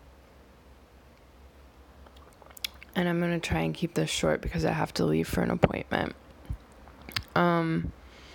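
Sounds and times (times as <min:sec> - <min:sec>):
slurping sip of coffee: 0:02.0 - 0:02.9
speech: 0:03.0 - 0:06.2, 0:07.4 - 0:08.0.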